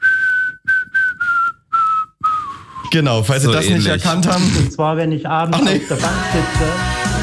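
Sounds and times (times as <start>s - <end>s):
person whistling a melody to blackbirds on a bench in the evening: 0.0s - 2.9s
speech: 2.9s - 7.1s.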